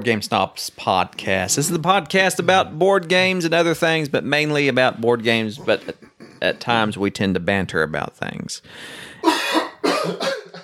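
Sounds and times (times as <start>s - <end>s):
speech: 0.0s - 10.6s
person coughing: 5.7s - 6.6s, 9.2s - 10.6s.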